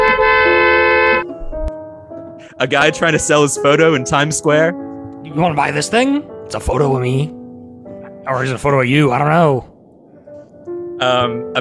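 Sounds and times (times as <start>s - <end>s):
car horn honking in traffic: 0.0s - 1.5s
quieter lower-pitched car horn tone: 0.0s - 1.7s
speech: 2.6s - 7.4s, 8.2s - 9.7s, 11.0s - 11.5s.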